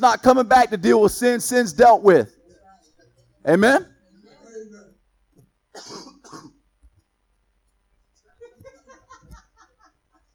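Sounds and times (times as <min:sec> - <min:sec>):
speech: 0:00.0 - 0:02.4, 0:03.4 - 0:03.9
man coughing and clearing his throat: 0:05.8 - 0:06.6
laughter: 0:08.4 - 0:10.3.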